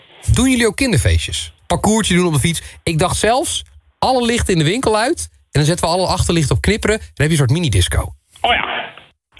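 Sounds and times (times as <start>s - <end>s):
steady loud telephone line noise hiss: 0.0s - 5.0s
speech: 0.4s - 8.8s.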